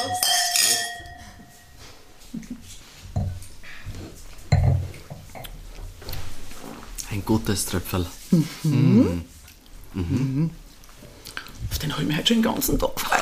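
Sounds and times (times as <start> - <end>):
faint table clatter: 0.0 - 1.4
wine glasses clinking in a toast: 0.0 - 1.8, 4.5 - 4.8
speech: 7.2 - 9.4, 10.0 - 10.6, 11.8 - 13.2.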